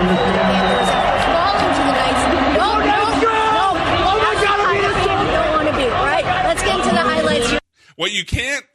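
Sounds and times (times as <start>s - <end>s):
scattered shouts and whoops from arena crowd: 0.0s - 6.9s
loud arena crowd of fans roaring: 0.0s - 7.6s
speech: 8.0s - 8.7s.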